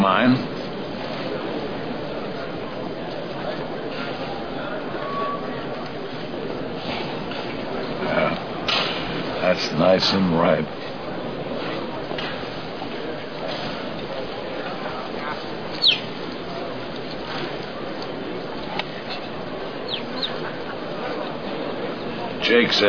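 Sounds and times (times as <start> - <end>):
constant noisy background: 0.0 - 22.8
speech: 0.1 - 0.6, 9.8 - 10.9, 22.5 - 22.8
baby bird fallen out of its nest chirping: 15.8 - 16.1, 19.9 - 20.4.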